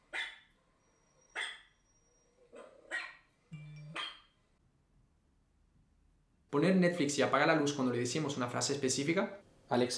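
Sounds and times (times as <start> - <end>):
dog barking: 0.1 - 0.5, 1.3 - 1.7, 2.5 - 3.3, 4.0 - 4.3
speech: 6.5 - 9.9.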